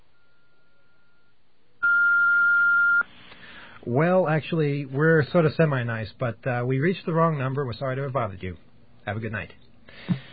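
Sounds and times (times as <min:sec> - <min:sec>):
loud electronic beep from an answering machine: 0:00.1 - 0:03.0
quiet phone line hiss: 0:00.1 - 0:03.1
speech: 0:03.9 - 0:10.3.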